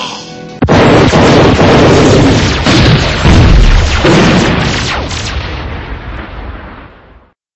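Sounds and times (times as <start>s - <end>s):
bazooka firing in a video game: 0.6s - 6.3s.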